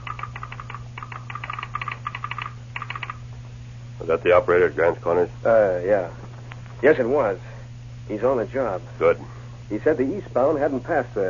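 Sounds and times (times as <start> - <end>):
telegraph sounder clicking in a telegraph office: 0.0 - 3.2
steady low electrical hum: 0.0 - 11.2
speech: 4.0 - 6.2, 6.8 - 7.5, 8.1 - 11.2.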